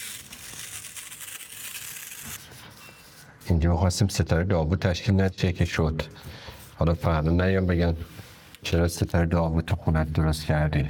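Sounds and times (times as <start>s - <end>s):
adhesive tape pulled off a roll and pressed down: 0.0s - 2.5s
speech: 3.5s - 10.8s.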